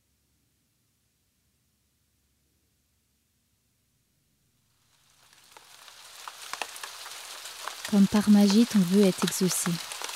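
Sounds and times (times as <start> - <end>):
heavy pouring rain: 4.7 - 10.1
scattered drops pattering and ticking on a surface: 5.2 - 10.1
speech: 7.9 - 9.9.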